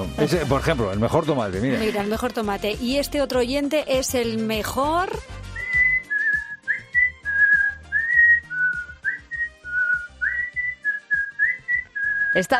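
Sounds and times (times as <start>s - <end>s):
speech: 0.0s - 5.3s, 12.4s - 12.5s
person whistling a lively melody: 5.6s - 12.5s.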